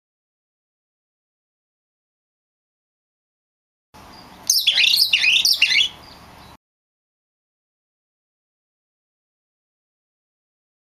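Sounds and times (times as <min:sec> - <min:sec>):
Oriental magpie-robin phrase of high twisting whistles and buzzy notes: 0:04.5 - 0:06.0.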